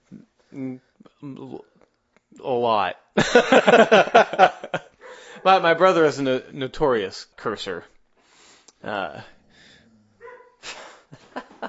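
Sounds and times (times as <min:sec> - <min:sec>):
speech: 0:00.6 - 0:01.7, 0:02.7 - 0:04.2, 0:05.5 - 0:08.0, 0:08.8 - 0:09.4
laughter: 0:03.2 - 0:05.5, 0:11.1 - 0:11.6
dogs barking: 0:05.0 - 0:05.7, 0:10.2 - 0:10.6
dog whining: 0:10.2 - 0:10.6.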